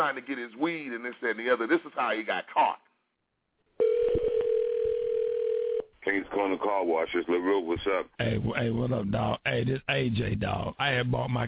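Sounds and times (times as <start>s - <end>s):
speech: 0.0s - 2.8s, 6.0s - 11.4s
telephone line tone: 3.8s - 5.9s.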